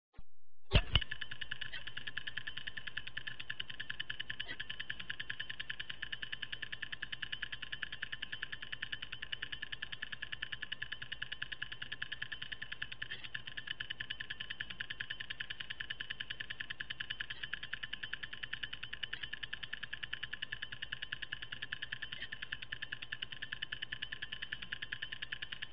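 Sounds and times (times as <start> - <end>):
stopwatch: 0.7 - 25.7.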